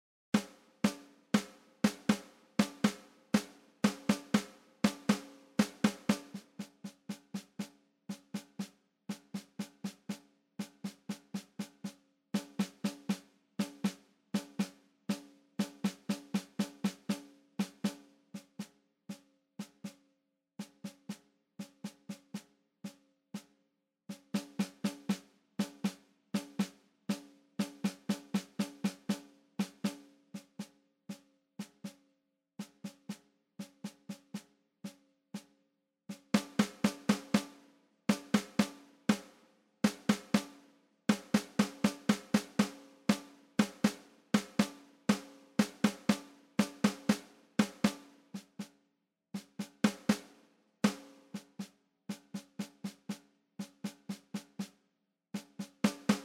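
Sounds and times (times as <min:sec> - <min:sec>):
snare drum beat: 0:00.4 - 0:11.8, 0:12.4 - 0:18.0, 0:24.2 - 0:30.7, 0:36.1 - 0:48.7, 0:49.4 - 0:54.7, 0:55.4 - 0:56.2.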